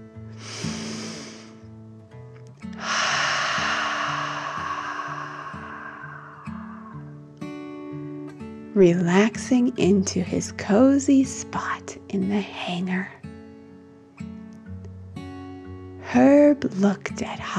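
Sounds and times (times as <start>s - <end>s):
narrator taking a deep breath in and out: 0.3s - 1.7s, 2.7s - 7.3s
speech: 8.8s - 13.2s, 16.2s - 17.5s.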